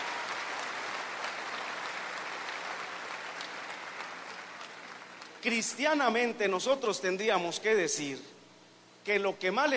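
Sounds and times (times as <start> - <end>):
crowd applauding: 0.0 - 5.5
speech: 5.4 - 8.4, 9.0 - 9.7.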